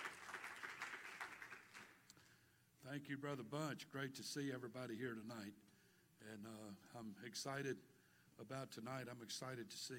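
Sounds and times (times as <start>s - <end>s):
audience applause: 0.0s - 2.0s
speech: 2.8s - 9.9s.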